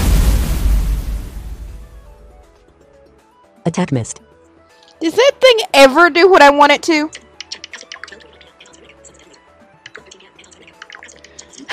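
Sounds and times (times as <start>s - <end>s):
fire cannon blast in a turn-based block battle video game: 0.0s - 2.4s
speech: 3.6s - 4.3s, 5.0s - 7.2s.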